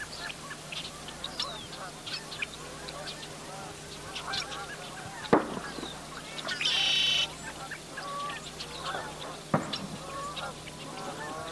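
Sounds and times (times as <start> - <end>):
chorus of small birds chirping and tweeting: 0.0 - 11.5
geese honking at dawn: 0.0 - 11.5
sharp pops: 5.2 - 6.8, 9.5 - 10.0.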